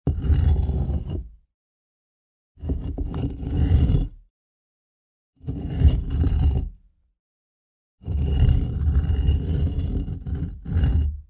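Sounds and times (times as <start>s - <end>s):
stone dragged on stone: 0.0s - 1.4s, 2.6s - 4.3s, 5.4s - 6.8s, 8.0s - 11.2s.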